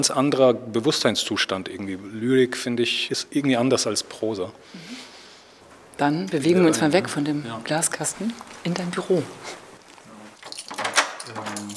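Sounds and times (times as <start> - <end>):
speech: 0.0 - 5.0, 6.0 - 9.6
door swinging closed with a sharp thud: 10.4 - 11.7.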